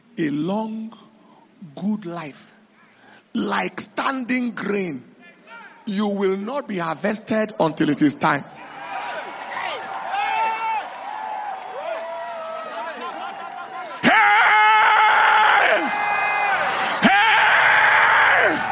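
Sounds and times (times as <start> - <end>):
speech: 0.2 - 2.5, 3.3 - 5.1, 5.8 - 8.6
laughter: 12.6 - 14.1
person screaming: 14.0 - 18.6.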